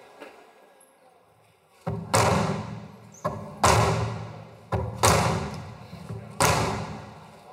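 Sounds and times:
man striking a painted mural with a hammer: 1.9s - 7.2s.

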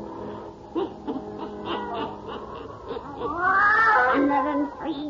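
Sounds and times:
laughter: 0.7s - 4.8s
black cat meowing: 3.2s - 4.9s.

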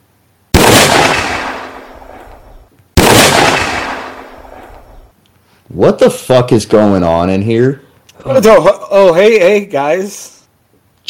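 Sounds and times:
size 12 gun blasts: 0.5s - 5.0s
speech: 5.8s - 10.4s.

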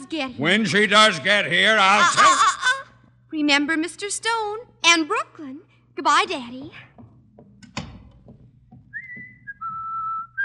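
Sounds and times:
speech: 0.1s - 2.6s, 3.3s - 6.9s
laughter: 1.9s - 2.9s
woman whistling a tune in a hallway: 8.9s - 10.4s.

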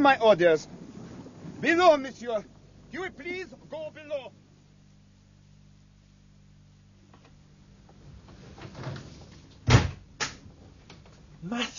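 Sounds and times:
speech: 0.0s - 0.8s, 1.6s - 4.4s, 11.4s - 11.7s
door shutting with a solid thud: 8.2s - 10.0s.

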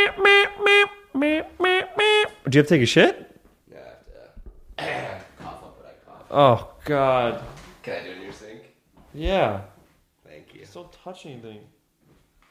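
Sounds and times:
voice imitating a trumpet with brassy toots: 0.0s - 2.5s
speech: 2.5s - 3.2s, 6.4s - 8.4s, 9.2s - 9.7s, 10.8s - 11.8s
person clearing throat close to the microphone: 4.8s - 5.3s.

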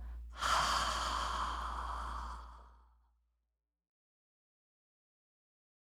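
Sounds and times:
long breathy exhale during a breathing exercise: 0.0s - 2.8s
long slow deep inhale through the nose during a breathing exercise: 0.0s - 2.8s.

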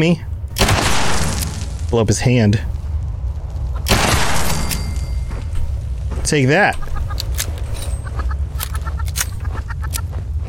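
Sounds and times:
speech: 0.0s - 0.3s, 1.9s - 2.7s, 6.3s - 6.9s
steady low rumble in a video game: 0.0s - 10.4s
sharp crackling hits in a video game: 0.3s - 10.1s
angry enemy chicken squawking and clucking in a video game: 6.8s - 7.2s, 8.0s - 10.0s.

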